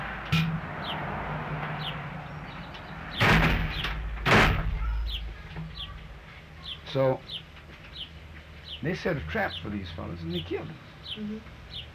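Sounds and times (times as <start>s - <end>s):
steady low hum: 0.0s - 11.9s
heavy door slamming shut: 3.1s - 6.3s
speech: 6.9s - 7.5s, 8.8s - 11.8s.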